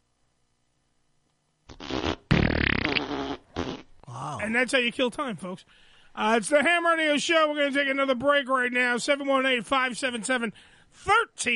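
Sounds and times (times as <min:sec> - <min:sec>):
fart sound effect from smart speaker: 0:01.7 - 0:03.9
speech: 0:04.5 - 0:11.5.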